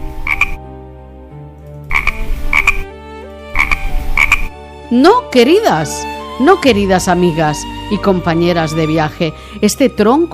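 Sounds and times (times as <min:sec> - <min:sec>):
frogs croaking: 0:00.0 - 0:00.6, 0:01.9 - 0:02.9, 0:03.6 - 0:04.6
speech: 0:04.9 - 0:10.3.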